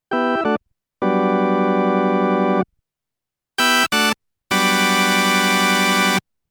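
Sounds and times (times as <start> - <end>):
Vox Continental compact electric organ: 0.1 - 2.6, 3.6 - 6.2.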